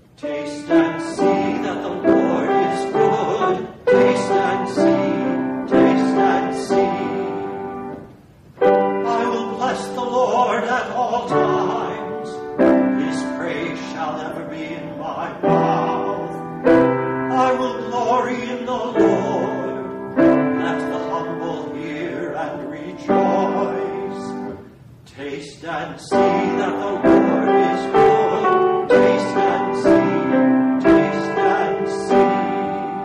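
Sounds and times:
choir singing a psalm setting in full harmony: 0:00.2 - 0:08.0, 0:09.0 - 0:33.0.

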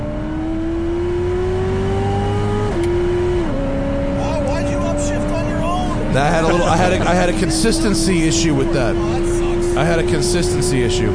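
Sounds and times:
Chevrolet Corvette with manual gearbox accelerating hard in third gear: 0:00.0 - 0:11.1
laughter: 0:05.6 - 0:10.8
speech: 0:06.2 - 0:09.2, 0:09.8 - 0:11.1.

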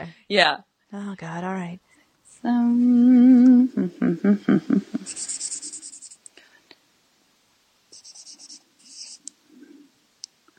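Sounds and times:
speech: 0:00.0 - 0:05.3
breathy sounds: 0:01.8 - 0:02.2, 0:06.4 - 0:06.7
brief hummed vocal tone: 0:02.4 - 0:06.0
pencil scratching across paper while writing math: 0:05.0 - 0:06.2, 0:08.0 - 0:09.3.

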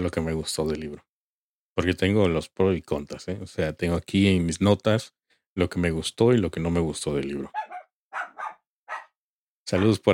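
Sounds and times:
speech: 0:00.0 - 0:01.1, 0:01.8 - 0:07.7, 0:09.7 - 0:10.1
dog barking: 0:07.5 - 0:10.0.

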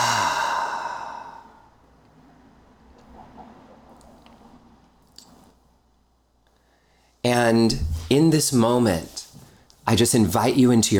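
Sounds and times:
deep breath out as a long voiced sigh during a guided prayer: 0:00.0 - 0:01.7
speech: 0:07.2 - 0:09.2, 0:09.9 - 0:10.9.

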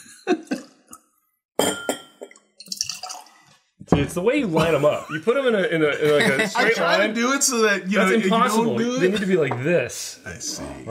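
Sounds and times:
empty clear glass clinking as it is set down on a hard surface: 0:01.6 - 0:03.0
speech: 0:04.0 - 0:10.8.

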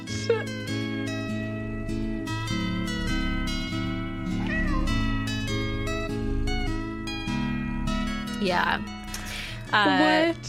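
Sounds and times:
steady layered music: 0:00.0 - 0:10.4
ginger tabby cat meowing: 0:04.3 - 0:05.3
speech: 0:08.4 - 0:09.0, 0:09.7 - 0:10.4.

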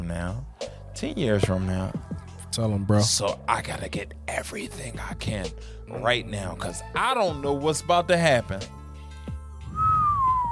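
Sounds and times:
speech: 0:00.1 - 0:08.8
person whistling: 0:09.7 - 0:10.5.

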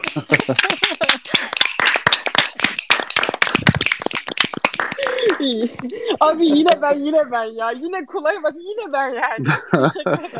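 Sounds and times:
audience applause: 0:00.0 - 0:06.2
people laughing: 0:00.0 - 0:07.2, 0:08.8 - 0:10.3
speech: 0:00.2 - 0:01.4, 0:05.3 - 0:10.3.

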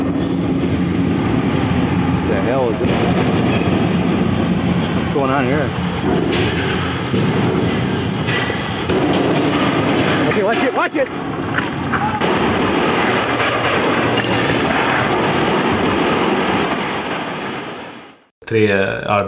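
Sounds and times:
giant construction crane groaning and creaking with metallic squeals: 0:00.0 - 0:19.2
heavy rumbling: 0:00.0 - 0:19.2
speech: 0:05.2 - 0:07.8, 0:10.4 - 0:11.4, 0:18.5 - 0:19.2
men shouting in alarm: 0:11.8 - 0:12.4.

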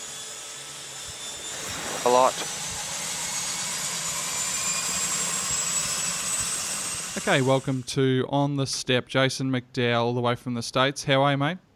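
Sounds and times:
flying boat right engine starting up at the dock: 0:00.0 - 0:08.0
speech: 0:02.0 - 0:02.6, 0:07.2 - 0:11.6.

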